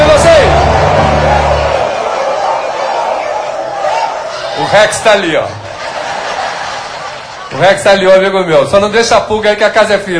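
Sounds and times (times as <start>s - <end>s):
large audience at a show imitating deep dog barks: 0.5s - 4.8s
laughter: 4.5s - 7.9s
speech: 4.8s - 5.6s, 7.5s - 10.1s.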